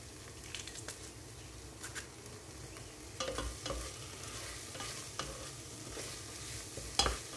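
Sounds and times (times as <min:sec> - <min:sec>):
tomato paste and pressed garlic sizzling while frying in a pan: 0:00.0 - 0:07.3
scraping and tapping from stirring in a pan: 0:03.2 - 0:07.3.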